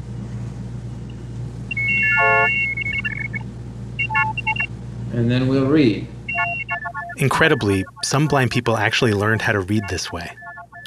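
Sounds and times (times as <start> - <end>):
low constant hum: 0.0 - 10.8
short electronic beeps jumping between pitches from an optophone reading printed text: 1.7 - 3.4, 4.0 - 4.7, 6.3 - 8.6, 9.7 - 10.8
speech: 5.2 - 6.1, 7.2 - 10.8
stacked chord of steady electronic tones from a 1971 optophone: 6.3 - 10.8.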